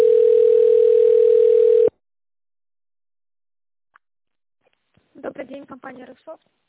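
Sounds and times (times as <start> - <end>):
telephone ringback tone while a call is connected and transferred: 0.0 - 1.9
speech: 5.9 - 6.6.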